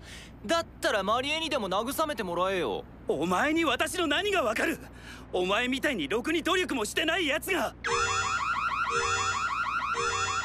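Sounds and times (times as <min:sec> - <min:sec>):
speech: 0:00.4 - 0:08.1
electronic alarm with warbling siren tone: 0:07.8 - 0:10.4.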